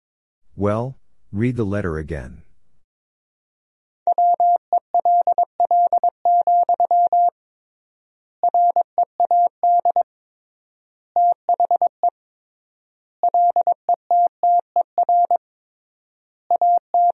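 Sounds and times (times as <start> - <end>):
speech: 0.6 - 2.5
Morse code tone beeps sent at 22 words per minute: 4.1 - 7.3, 8.4 - 10.0, 13.3 - 15.4, 16.5 - 17.1.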